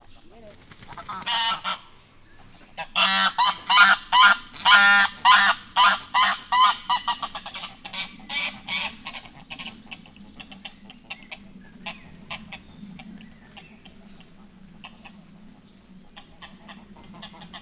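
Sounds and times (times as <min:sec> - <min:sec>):
turkey gobbling in a zoo: 0:00.0 - 0:17.5
domestic goose honking in a zoo: 0:00.9 - 0:02.0, 0:02.7 - 0:12.7, 0:16.1 - 0:17.5.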